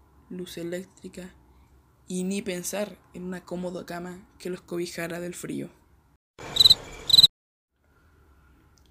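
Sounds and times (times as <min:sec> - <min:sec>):
speech: 0:00.3 - 0:01.4, 0:02.1 - 0:05.8
crickets chirping at night: 0:06.6 - 0:07.3.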